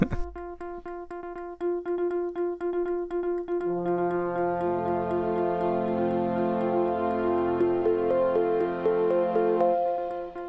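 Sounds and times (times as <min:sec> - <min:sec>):
clock-like ticking in a streaming server idle loop: 0:00.0 - 0:10.4
gentle melodic jingle of sustained tones: 0:02.4 - 0:10.4.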